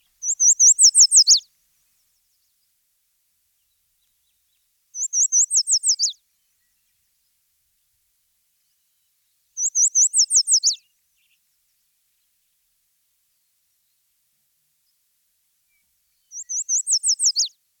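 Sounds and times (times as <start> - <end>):
Yellow Warbler singing: 0.2 - 1.4, 4.2 - 6.8, 9.6 - 11.3, 16.2 - 17.5.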